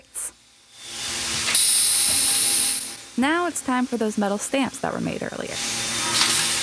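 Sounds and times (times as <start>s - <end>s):
steam hissing from a vinyl record pressing machine: 0.8s - 4.4s, 5.5s - 6.6s
speech: 3.2s - 5.8s.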